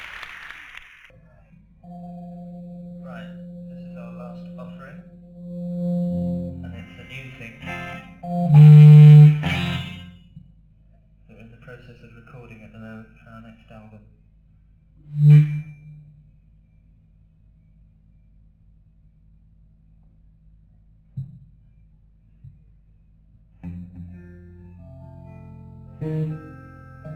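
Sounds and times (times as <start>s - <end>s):
instrument tuning: 1.9s - 10.2s, 15.1s - 16.0s, 23.7s - 27.1s.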